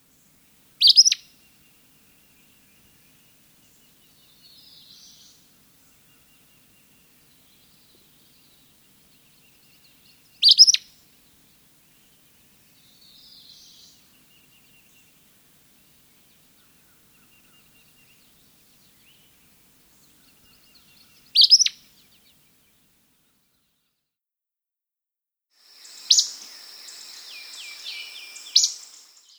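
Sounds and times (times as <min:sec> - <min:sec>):
Acadian flycatcher calling: 0:00.1 - 0:11.1, 0:16.0 - 0:22.3, 0:25.6 - 0:29.3.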